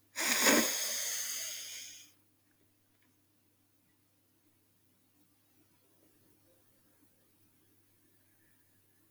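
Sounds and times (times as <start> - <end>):
slow inhale through the nose during a guided breathing exercise: 0.2 - 2.1.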